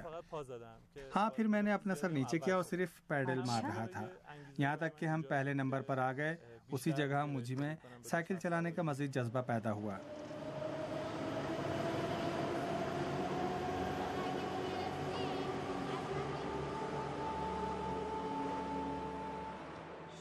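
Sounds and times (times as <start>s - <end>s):
speech: 0.2s - 10.3s
metro train rumbling with motor whine and rattling wheels in a station: 9.7s - 20.1s
faint crowd murmur: 10.0s - 20.1s.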